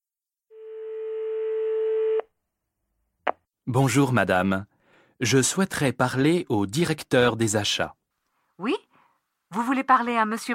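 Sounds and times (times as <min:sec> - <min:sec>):
telephone dialing tone: 0:00.5 - 0:02.3
speech: 0:03.7 - 0:08.0, 0:08.6 - 0:08.9, 0:09.5 - 0:10.5.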